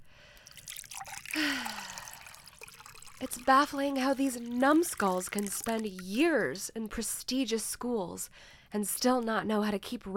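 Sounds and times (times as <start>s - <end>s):
liquid pouring into a glass: 0.3s - 6.5s
speech: 3.2s - 10.1s.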